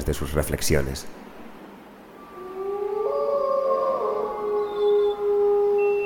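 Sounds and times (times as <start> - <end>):
speech: 0.0 - 1.3
several wolves howling together at night below a hillside: 2.2 - 6.0.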